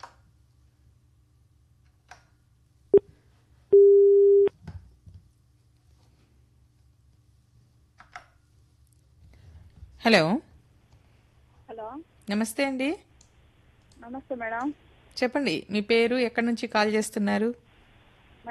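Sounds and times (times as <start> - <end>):
telephone busy tone after the line disconnected: 3.8 - 4.5
speech: 10.0 - 10.4, 12.0 - 13.1, 14.0 - 17.6
quiet telephone line noise: 13.0 - 15.5, 17.6 - 18.4.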